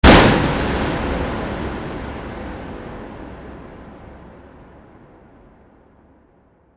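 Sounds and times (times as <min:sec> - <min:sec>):
bright heavy sound design hit: 0:00.0 - 0:04.7.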